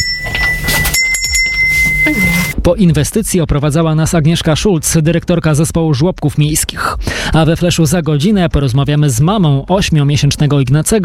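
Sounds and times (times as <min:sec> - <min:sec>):
small bells jingling: 0:00.0 - 0:02.6
speech: 0:02.1 - 0:11.0.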